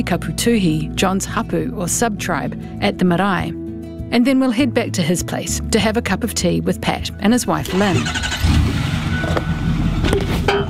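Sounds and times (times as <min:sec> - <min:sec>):
speech: 0:00.0 - 0:09.5
truck engine rumbling: 0:07.5 - 0:10.6.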